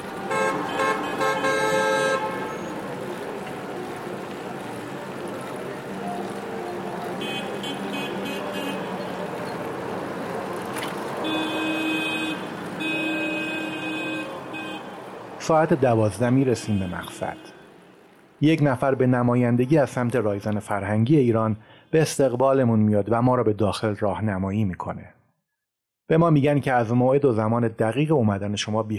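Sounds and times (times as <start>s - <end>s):
car horns honking in busy city traffic: 0.0s - 2.8s, 7.1s - 9.3s, 11.2s - 15.3s, 16.0s - 17.9s
engines rumbling: 0.0s - 20.4s
dense traffic noise: 0.0s - 22.0s
speech: 15.5s - 17.6s, 18.4s - 25.2s, 26.1s - 28.9s.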